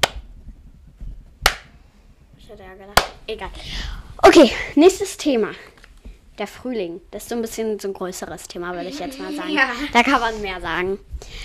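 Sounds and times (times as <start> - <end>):
one person clapping hands: 0.0 - 0.2, 1.4 - 1.7
speech: 2.5 - 5.7, 6.4 - 11.4.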